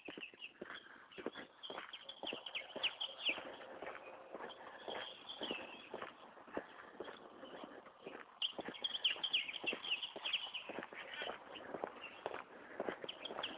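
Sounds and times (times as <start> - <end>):
house sparrows and grackles chirping and calling: 0.0 - 13.5.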